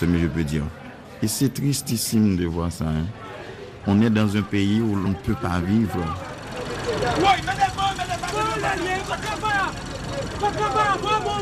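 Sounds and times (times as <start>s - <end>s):
speech: 0.0s - 6.3s, 7.0s - 11.4s
crowd chattering and calling out at a bus departure point: 0.0s - 11.4s
vehicles passing at a bus departure point: 0.0s - 11.4s
vehicle engines idling at a bus departure point: 4.5s - 11.4s.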